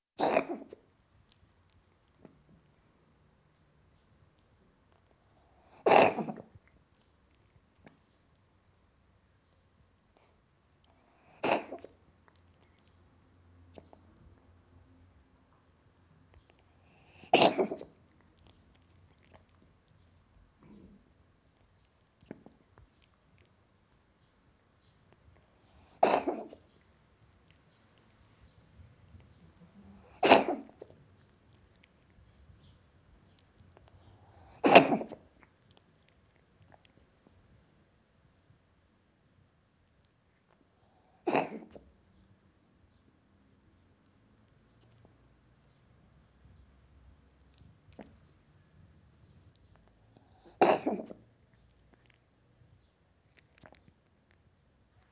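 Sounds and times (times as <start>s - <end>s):
cat coughing: 0.2s - 0.8s, 5.8s - 6.5s, 11.2s - 11.9s, 17.2s - 18.0s, 25.8s - 26.6s, 30.0s - 30.9s, 34.3s - 35.2s, 41.2s - 41.8s, 50.4s - 51.2s.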